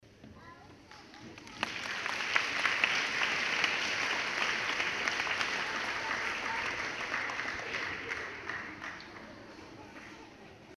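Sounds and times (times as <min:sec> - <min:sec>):
people clapping: 0:00.8 - 0:10.4.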